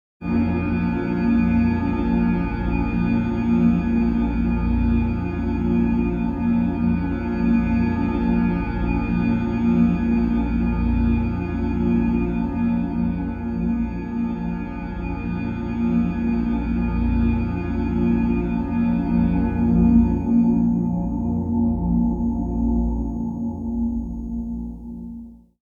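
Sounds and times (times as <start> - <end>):
dark mystery glass drone: 0.3 - 25.2.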